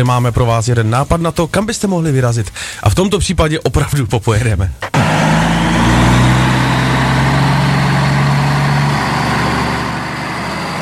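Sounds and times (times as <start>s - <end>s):
speech: 0.0s - 5.1s
heavy truck engine idling: 4.9s - 10.8s.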